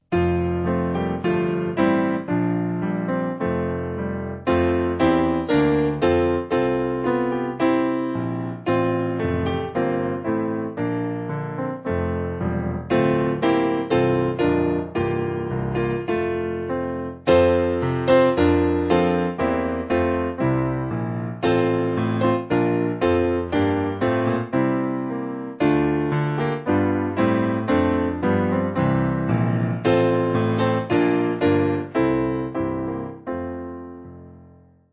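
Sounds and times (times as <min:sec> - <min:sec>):
piano piece: 0:00.0 - 0:34.9.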